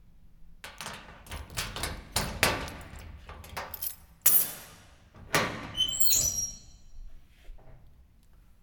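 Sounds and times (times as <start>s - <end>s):
metal locker: 0.9s - 6.7s.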